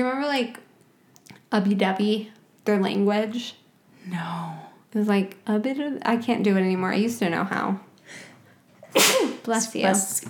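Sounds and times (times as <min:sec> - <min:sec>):
speech: 0:00.0 - 0:00.6, 0:01.5 - 0:08.2, 0:08.9 - 0:10.2
person sneezing: 0:08.8 - 0:09.4.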